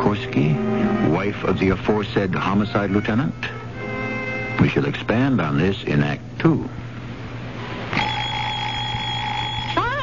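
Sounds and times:
low hum: 0.0 - 10.0
speech: 0.1 - 0.6, 1.3 - 3.6, 4.6 - 6.8
alarm clock ringing with electric buzz: 8.0 - 9.8.

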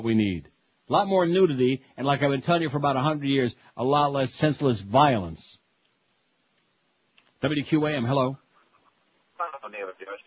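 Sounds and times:
speech: 0.0 - 5.6, 7.4 - 8.4
garbled voice through a poor telephone line: 9.4 - 10.2.

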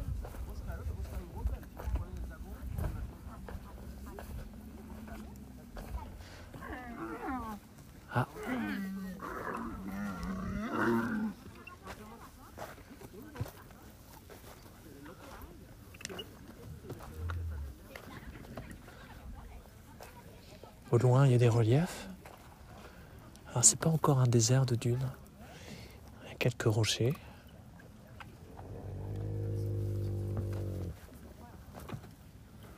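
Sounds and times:
low steady outdoor rumble: 0.0 - 11.4, 16.6 - 20.0, 28.0 - 31.6
dromedary camels moaning and grumbling at night: 3.0 - 11.5, 17.0 - 17.8, 28.5 - 31.0
speech: 21.0 - 22.0, 23.6 - 25.2, 26.4 - 27.3.

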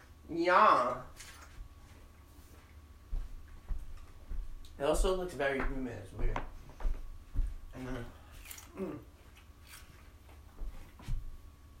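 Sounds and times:
faint hum: 0.0 - 11.7
speech: 0.3 - 1.3, 4.8 - 6.5, 7.8 - 8.2, 8.8 - 9.1
person chewing food: 7.7 - 10.5.

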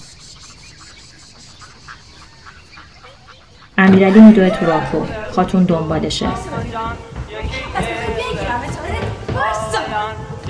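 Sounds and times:
flock of ducks quacking while being herded: 0.0 - 7.1
speech: 3.8 - 7.9
laughter: 3.8 - 10.4.

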